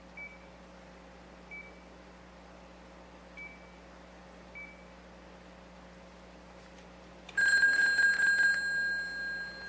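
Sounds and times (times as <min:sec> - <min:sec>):
payphone mechanical bell ringing from an incoming call via a VoIP box: 0:07.4 - 0:09.6.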